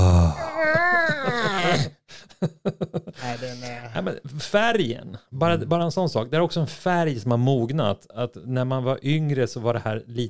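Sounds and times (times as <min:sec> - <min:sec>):
person moaning in admiration of a sky-blue colour: 0:00.0 - 0:01.9
speech: 0:01.8 - 0:10.2.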